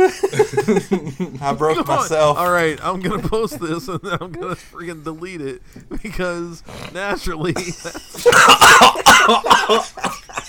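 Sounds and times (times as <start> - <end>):
laughter: 0.0 - 5.0, 7.0 - 10.4
speech: 0.0 - 10.4
person coughing while choking on mucus: 8.1 - 10.4.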